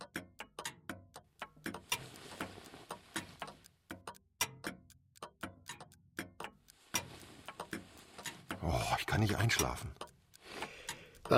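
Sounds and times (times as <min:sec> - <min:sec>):
many hanging and standing clocks ticking in an apartment: 0:00.0 - 0:11.3
speech: 0:08.6 - 0:10.0.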